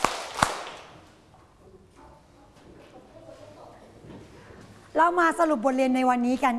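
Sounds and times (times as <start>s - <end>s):
classroom of students clapping in unison: 0.0s - 0.9s
speech: 5.0s - 6.5s.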